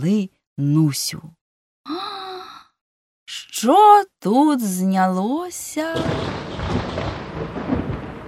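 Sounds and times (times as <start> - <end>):
speech: 0.0 - 2.0, 3.6 - 7.1
deep rolling rumble of thunder: 6.0 - 8.2.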